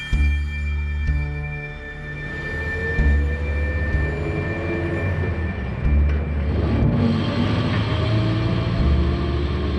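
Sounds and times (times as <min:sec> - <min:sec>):
bus drivetrain whine shifting gears: 0:00.0 - 0:09.7
bus road noise: 0:01.9 - 0:09.7
bus driving along a road with low engine rumble: 0:02.1 - 0:09.7.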